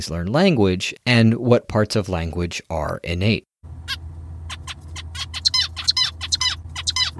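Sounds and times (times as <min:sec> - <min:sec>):
speech: 0:00.0 - 0:04.0
steady low hum: 0:03.6 - 0:07.1
songbird singing: 0:03.9 - 0:07.1.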